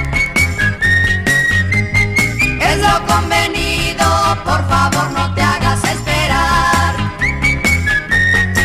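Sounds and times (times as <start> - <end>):
person whistling a signal tune: 0.0 - 3.2, 7.0 - 8.6
rhythmic music with pulsing bass and regular percussion hits: 0.0 - 7.5.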